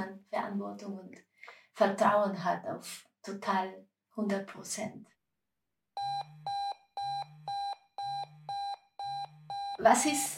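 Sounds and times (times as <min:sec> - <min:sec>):
speech: 0:00.3 - 0:05.2, 0:09.8 - 0:10.3
fire brigade pager alarm beeping in sharp electronic tones: 0:06.0 - 0:09.8.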